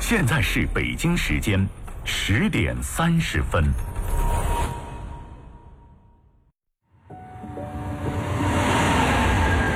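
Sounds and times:
speech: 0.1s - 4.0s
subway train rumbling: 7.3s - 9.7s.

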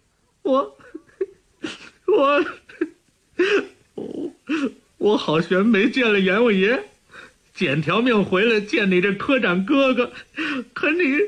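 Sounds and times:
man crying and sobbing: 0.4s - 6.1s, 9.7s - 11.2s
speech: 0.5s - 1.1s, 2.1s - 3.7s, 4.6s - 6.9s, 7.6s - 11.2s.

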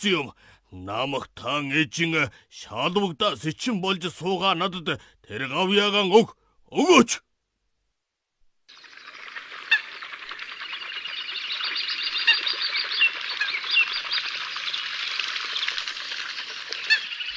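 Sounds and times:
speech: 0.0s - 7.3s
birds chirping and chattering: 8.8s - 17.3s.

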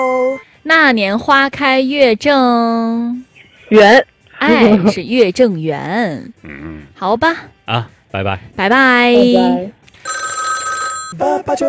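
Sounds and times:
speech: 0.0s - 10.2s, 11.1s - 11.6s
telephone ringing on a radio call-in quiz line: 10.0s - 11.2s.

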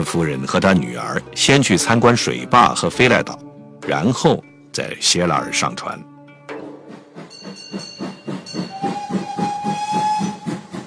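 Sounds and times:
speech: 0.0s - 6.1s
train wheels clattering over rail joints: 6.5s - 10.8s.

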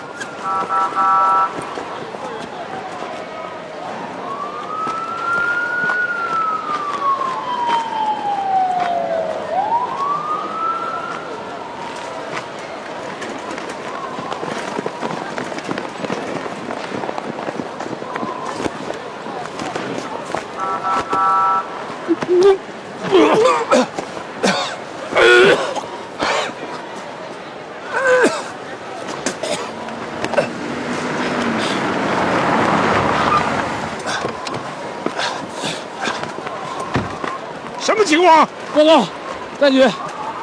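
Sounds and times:
ambulance siren wailing: 0.0s - 1.8s, 2.6s - 13.0s, 20.3s - 22.6s, 32.4s - 40.4s
voices and commotion: 0.0s - 40.4s
speech: 0.4s - 2.1s, 38.8s - 40.0s.

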